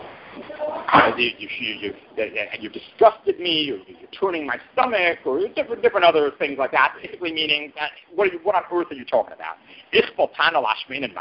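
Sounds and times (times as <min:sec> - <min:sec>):
speech: 0:00.4 - 0:11.2
door swinging shut with a solid thud: 0:00.9 - 0:01.3.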